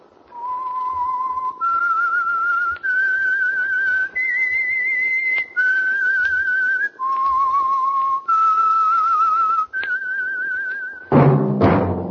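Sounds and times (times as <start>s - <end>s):
person whistling a tune as a radio program signal: 0.3s - 11.2s.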